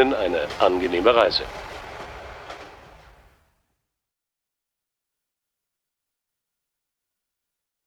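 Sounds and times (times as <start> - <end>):
speech: 0.0 - 1.7
moving train rumbling and rattling heard from inside a carriage: 0.0 - 3.4.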